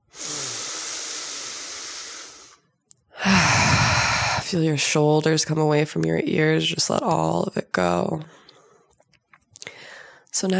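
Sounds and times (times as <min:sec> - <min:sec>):
deep breath during a guided relaxation: 0:00.0 - 0:04.4, 0:09.6 - 0:10.3
speech: 0:04.5 - 0:08.4, 0:10.4 - 0:10.5.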